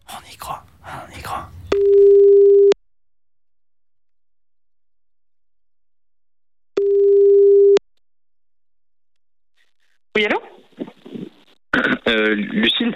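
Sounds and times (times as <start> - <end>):
telephone ringing tone while a call is placed: 1.7 - 2.8, 6.8 - 7.8
speech: 12.1 - 12.9.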